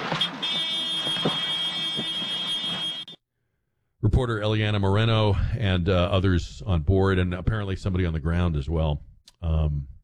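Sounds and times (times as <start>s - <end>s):
high-pitched cockpit warning alarm in a news helicopter: 0.2s - 3.2s
speech: 4.2s - 9.9s.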